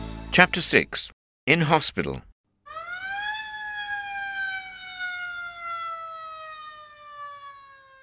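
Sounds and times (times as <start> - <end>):
speech: 0.4 - 2.3
ambulance siren wailing: 2.7 - 8.0.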